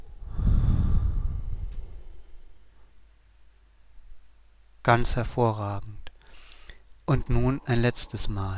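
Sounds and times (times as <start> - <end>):
person breathing in and out: 0.0 - 3.0, 6.2 - 6.9
speech: 4.8 - 6.1, 7.1 - 8.5.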